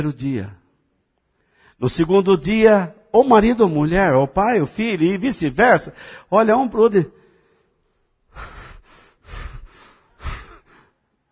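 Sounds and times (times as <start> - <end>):
speech: 0.0 - 0.6, 1.8 - 7.2
person breathing heavily in exaggerated panting breaths: 8.3 - 11.0.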